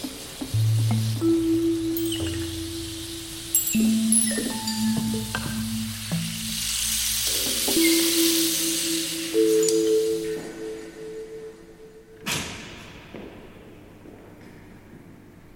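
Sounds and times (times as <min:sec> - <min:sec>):
rain falling: 0:00.0 - 0:11.8
high chirps: 0:00.6 - 0:12.2
sustained low electronic tones: 0:00.6 - 0:12.3.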